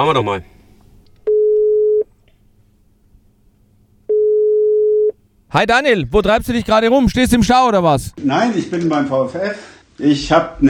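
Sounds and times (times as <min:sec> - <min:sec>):
speech: 0:00.0 - 0:00.5, 0:05.5 - 0:10.6
telephone ringing tone as a call is placed: 0:01.3 - 0:02.1, 0:04.1 - 0:05.2.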